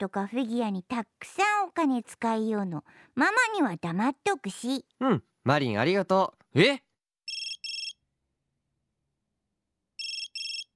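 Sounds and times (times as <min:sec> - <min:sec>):
speech: 0:00.0 - 0:06.9
bright electronic phone ringtone double trill: 0:07.2 - 0:08.0, 0:10.0 - 0:10.7.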